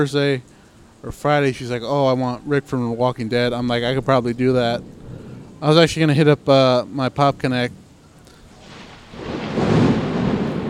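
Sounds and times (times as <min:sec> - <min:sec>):
speech: 0:00.0 - 0:05.0, 0:05.6 - 0:07.8
heavy rain: 0:00.0 - 0:10.6
thunder from a gigantic lightning strike: 0:02.8 - 0:10.6.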